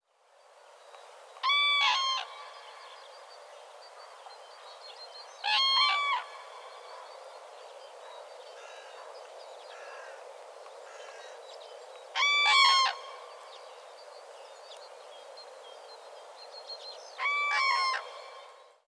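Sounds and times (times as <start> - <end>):
Grus grus calling: 1.4 - 2.9, 5.4 - 7.0, 8.6 - 10.2, 10.8 - 11.4, 12.1 - 13.5, 17.2 - 18.5.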